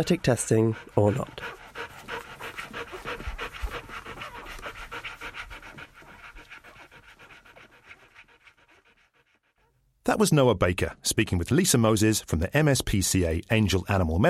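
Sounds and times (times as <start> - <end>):
speech: 0.0 - 1.9, 10.1 - 14.2
Golden Retriever dog panting: 0.0 - 9.8.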